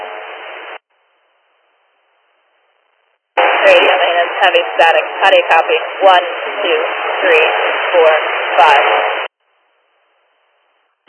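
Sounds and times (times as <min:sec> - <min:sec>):
heavy static on two-way dispatch radio transmission: 0:03.4 - 0:09.3.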